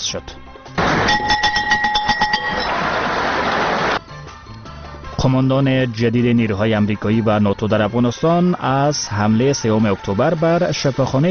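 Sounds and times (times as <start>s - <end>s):
speech: 0.1s - 0.4s, 5.2s - 11.2s
loud steady noise: 0.8s - 1.4s, 2.3s - 4.0s
school bell ringing to open the new school year in Afghanistan: 0.8s - 3.0s.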